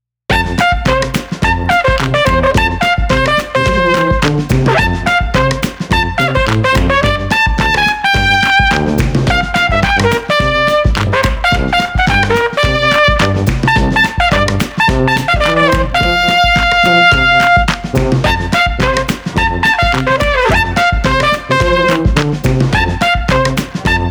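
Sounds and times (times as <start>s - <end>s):
festive trumpet: 0.3s - 24.0s
festive tuba: 0.3s - 24.0s
percussion: 0.3s - 24.0s.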